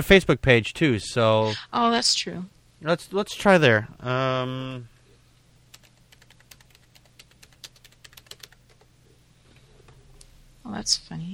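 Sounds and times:
speech: 0.0 - 4.9, 10.7 - 11.3
typing on a computer keyboard: 5.7 - 8.9.

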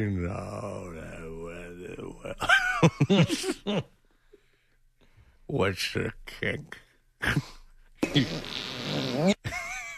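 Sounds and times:
speech: 0.0 - 1.0, 2.2 - 3.9, 5.5 - 9.4
long loud sputtering fart: 8.0 - 9.4.

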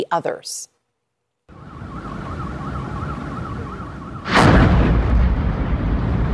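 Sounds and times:
warbling alarm at cooking gas plant: 1.5 - 5.2
sustained rumbling roar of burning blast: 1.5 - 6.3
gas truck explosion at cooking gas plant: 4.2 - 6.3.

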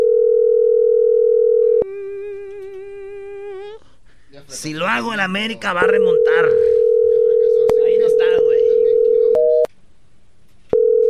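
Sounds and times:
telephone line tone while a call waits to be answered: 0.0 - 1.9, 5.7 - 9.7, 10.8 - 11.0
speech: 4.5 - 6.8.

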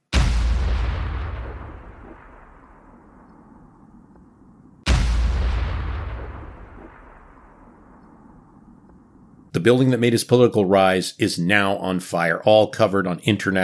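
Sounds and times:
heavy gun blasts fired at the upper floors of a building: 0.0 - 3.8, 4.8 - 8.6
speech: 9.6 - 13.6.

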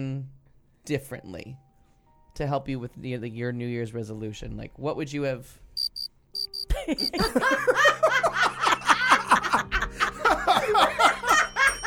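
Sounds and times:
speech: 0.8 - 1.6, 2.4 - 5.6, 6.9 - 8.2
cricket chirping: 5.8 - 7.3
several people laughing: 6.7 - 11.8.

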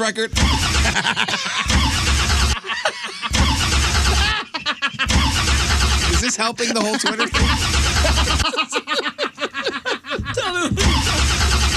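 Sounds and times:
speech: 0.0 - 3.5, 6.2 - 8.8
car engine cranking: 0.4 - 1.0, 1.7 - 2.6, 5.1 - 6.4, 7.4 - 8.4, 10.7 - 11.7
high whining tones: 0.4 - 2.6, 3.3 - 6.5, 7.4 - 8.4
laughter: 0.4 - 11.7.

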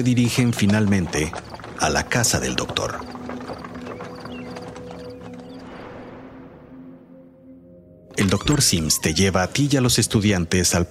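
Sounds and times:
speech: 0.0 - 3.2, 8.2 - 10.9
horse hooves clopping while pulling a cart: 0.0 - 6.1.

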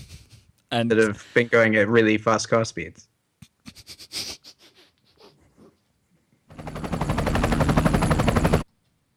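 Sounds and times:
speech: 0.7 - 3.1
traffic helicopter rotor chop: 6.5 - 8.7.

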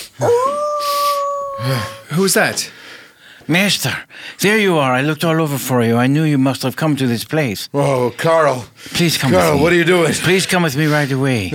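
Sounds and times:
speech: 0.2 - 0.6, 1.6 - 2.8, 3.5 - 11.5
dog howling in a kennel: 0.2 - 2.0.

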